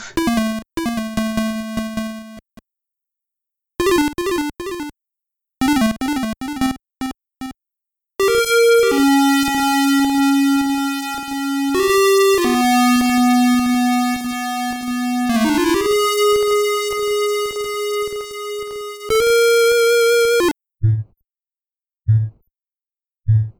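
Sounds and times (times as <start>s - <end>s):
chiptune square-wave tones from a PSG sound chip: 0.2s - 2.4s, 3.8s - 4.9s, 5.6s - 7.5s, 8.2s - 20.5s.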